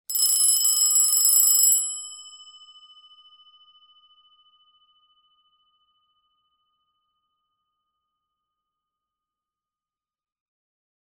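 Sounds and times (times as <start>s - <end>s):
door bell: 0.1s - 2.8s.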